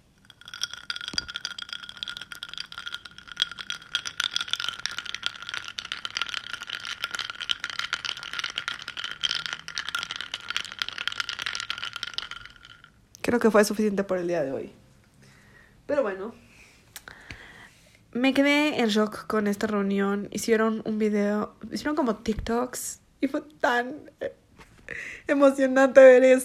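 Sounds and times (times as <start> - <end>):
coffee brewing with hiss, rattling and bubbling: 0.0 - 13.2
speech: 13.3 - 14.8, 18.2 - 24.4, 25.3 - 26.4.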